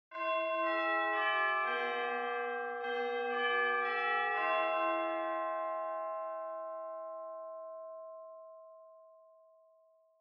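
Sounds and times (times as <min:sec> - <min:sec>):
distant Japanese school bell ringing fast: 0:00.2 - 0:06.5.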